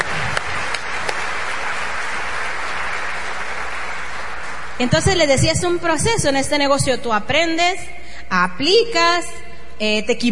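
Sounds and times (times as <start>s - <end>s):
crowd applause: 0.0s - 5.2s
speech: 4.8s - 10.3s.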